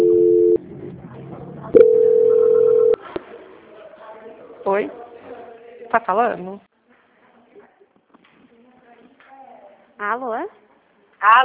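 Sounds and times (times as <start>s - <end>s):
telephone tones while a bank call is transferred: 0.0s - 0.6s, 1.8s - 3.0s
speech: 4.8s - 5.0s, 5.9s - 6.7s, 10.0s - 10.6s, 11.2s - 11.4s.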